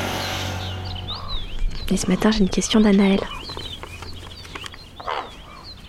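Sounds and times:
faint scattered songbird chirps outdoors: 0.2s - 5.8s
speech: 1.9s - 3.4s
crow giving a harsh raspy caw: 5.0s - 5.7s.

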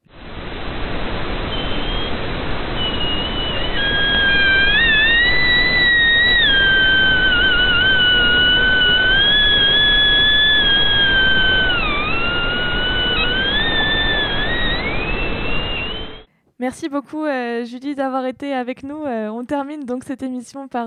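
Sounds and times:
sea ice floes singing in wavering whistles: 0.0s - 16.3s
steady rushing hiss: 0.0s - 16.3s
speech: 17.0s - 20.8s.

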